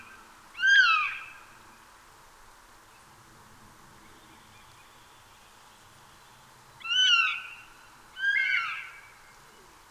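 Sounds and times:
Eurasian jay Garrulus glandarius calls: 0:00.6 - 0:01.4, 0:08.2 - 0:09.1.

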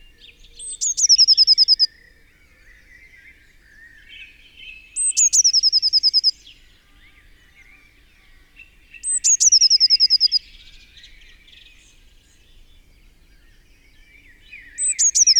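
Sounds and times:
faint lower chatter: 0:00.0 - 0:15.3
Eurasian blue tit Cyanistes caeruleus singing: 0:00.4 - 0:01.9, 0:03.9 - 0:06.6, 0:08.3 - 0:12.7, 0:13.4 - 0:15.3.

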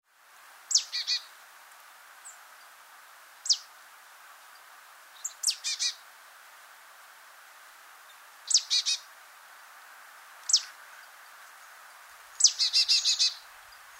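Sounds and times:
soft steady hiss: 0:00.0 - 0:13.9
marsh tit Poecile palustris calling: 0:00.7 - 0:01.3, 0:05.2 - 0:06.0, 0:08.5 - 0:09.1, 0:10.4 - 0:10.8, 0:12.4 - 0:13.5.

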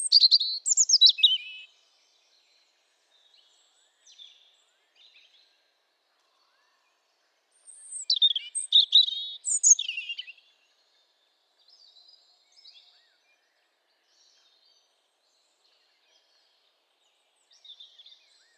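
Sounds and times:
European robin song: 0:00.0 - 0:01.7, 0:07.8 - 0:10.4.

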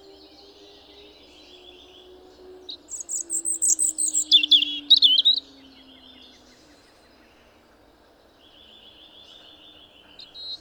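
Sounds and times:
European robin twittering, Erithacus rubecula: 0:00.0 - 0:06.2, 0:10.3 - 0:10.6
faint low droning tone: 0:00.0 - 0:07.8.

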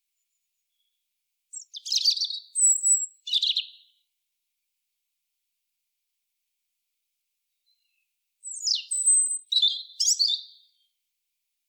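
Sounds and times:
European robin Erithacus rubecula whistling and twittering: 0:00.7 - 0:04.0, 0:07.6 - 0:10.9.

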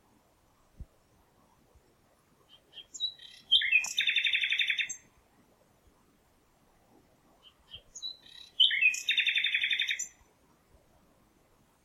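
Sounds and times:
Common nightingale Luscinia megarhynchos singing: 0:02.3 - 0:05.2, 0:07.3 - 0:10.3.

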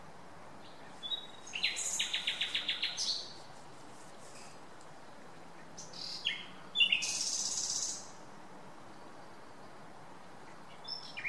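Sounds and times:
common nightingale Luscinia megarhynchos singing: 0:00.6 - 0:03.5, 0:05.3 - 0:08.2, 0:10.4 - 0:11.2.

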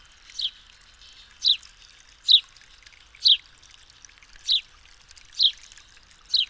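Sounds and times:
House sparrow (Passer domesticus) chirps: 0:00.3 - 0:01.6, 0:05.4 - 0:05.6.

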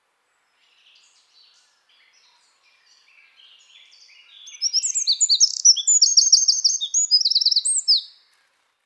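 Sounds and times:
Eurasian wren (Troglodytes troglodytes) singing: 0:03.8 - 0:08.1.

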